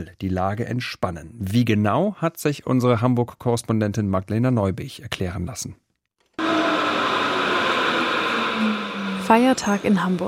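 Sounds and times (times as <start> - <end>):
speech: 0.0 - 5.8, 8.6 - 10.2
S-Bahn train roaring at a city station platform on a public holiday: 6.4 - 10.2.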